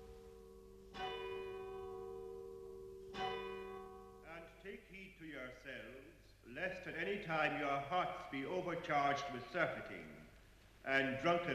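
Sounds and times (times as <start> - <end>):
church tower bell ringing for a watch night service: 0.0 - 4.6
speech: 4.6 - 11.5.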